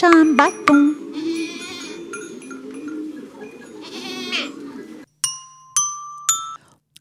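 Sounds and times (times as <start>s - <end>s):
speech: 0.0s - 0.9s
bright electronic chime tones: 0.0s - 3.9s
goat bleating: 1.1s - 2.4s, 3.8s - 4.6s.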